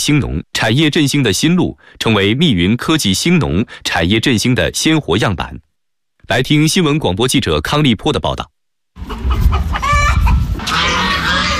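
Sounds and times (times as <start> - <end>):
speech: 0.0 - 5.7, 6.3 - 9.5
chickens clucking on a farm: 9.0 - 11.5
geese honking on a farm: 9.0 - 11.5.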